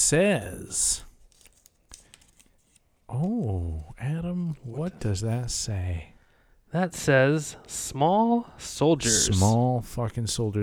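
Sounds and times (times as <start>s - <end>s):
speech: 0.1s - 1.1s, 3.1s - 6.1s, 6.7s - 10.6s
slip of paper pulled out of a goat figure and unfolded: 1.2s - 3.5s.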